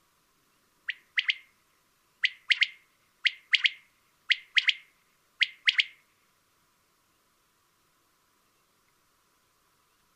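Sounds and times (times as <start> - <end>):
Common quail giving liquid three-note phrases: 0.9 - 1.5, 2.2 - 6.0.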